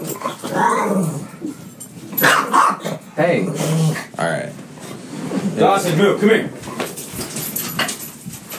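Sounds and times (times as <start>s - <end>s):
dogs growling and snarling: 0.0s - 5.2s
dog barking: 1.2s - 3.0s
speech: 3.2s - 4.6s, 5.6s - 6.6s.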